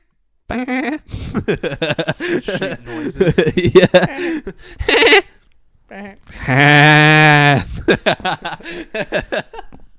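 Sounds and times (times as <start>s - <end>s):
quick talking and chatter: 0.5s - 1.0s, 1.8s - 5.2s
laughter: 0.6s - 5.4s, 6.6s - 9.8s
man imitating a sheep bleat: 6.5s - 7.7s.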